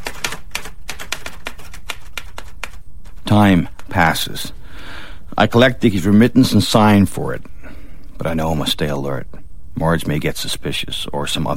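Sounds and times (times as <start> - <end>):
rapid typing on a typewriter: 0.0 - 3.9
steady low noise: 0.0 - 11.5
speech: 3.4 - 7.6, 8.2 - 11.5.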